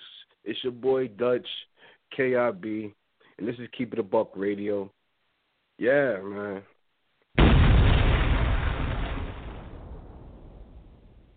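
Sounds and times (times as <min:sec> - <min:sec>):
speech: 0:00.5 - 0:05.0, 0:05.8 - 0:06.7
bomb explosion sound effect with deep rumble: 0:07.4 - 0:11.3.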